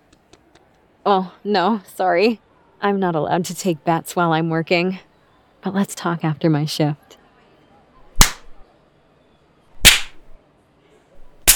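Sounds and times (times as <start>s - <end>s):
speech: 1.1s - 7.1s
sharp slaps: 8.1s - 8.6s, 9.8s - 10.4s, 11.3s - 11.5s.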